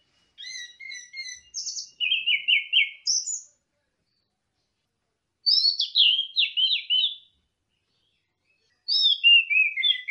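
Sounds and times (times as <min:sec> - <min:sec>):
orange-headed thrush singing slurred whistles: 0:00.4 - 0:03.5, 0:05.5 - 0:07.3, 0:08.9 - 0:10.0.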